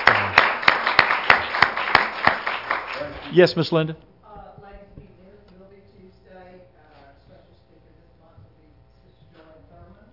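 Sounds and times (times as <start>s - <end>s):
church audience clapping hands in praise: 0.0s - 3.9s
speech: 3.3s - 4.1s.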